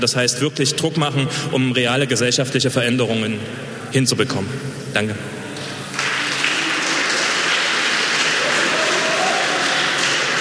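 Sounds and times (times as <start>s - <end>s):
speech: 0.0s - 5.4s
audience applause: 5.6s - 10.3s.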